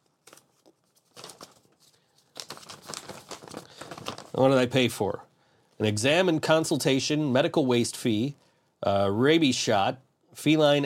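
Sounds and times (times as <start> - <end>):
paper invoice from a vet being unfolded and crinkled: 0.0 - 4.7
speech: 4.4 - 10.8.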